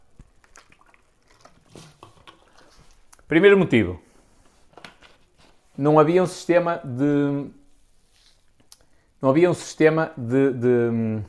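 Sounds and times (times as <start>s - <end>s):
person sipping water: 0.0s - 3.3s
small wet mouth clicks: 0.0s - 3.3s
speech: 3.3s - 4.1s, 5.8s - 7.6s, 9.2s - 11.2s.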